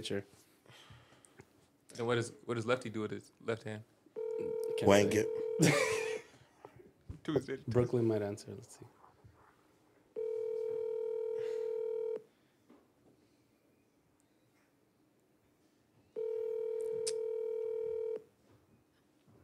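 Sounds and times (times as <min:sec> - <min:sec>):
speech: 0:00.0 - 0:00.5, 0:02.0 - 0:06.0, 0:07.2 - 0:09.0
ringback tones of an unanswered outgoing phone call: 0:04.2 - 0:05.8, 0:10.2 - 0:12.2, 0:16.2 - 0:18.2.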